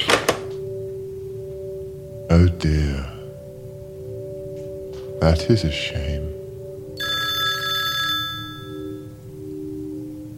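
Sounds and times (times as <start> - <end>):
speech: 2.3 - 3.1, 5.2 - 6.3
telephone bell ringing with a rapid metallic trill: 7.0 - 9.2.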